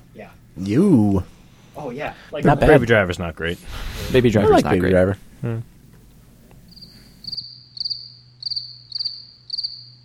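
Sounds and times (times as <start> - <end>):
low constant hum: 0.0 - 10.0
speech: 0.2 - 5.7
cricket chirping: 6.7 - 10.0.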